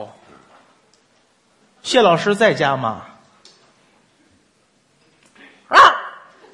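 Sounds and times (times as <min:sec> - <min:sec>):
speech: 0:01.8 - 0:03.1
single short sharp loud bark from a trained dog at home: 0:05.7 - 0:06.3.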